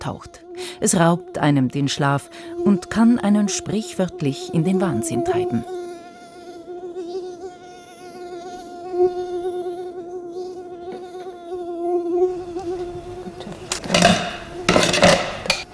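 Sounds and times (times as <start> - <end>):
speech: 0.0 - 5.8
Asian tiger mosquito whining: 0.0 - 14.8
sharp clattering clinks: 13.7 - 15.6.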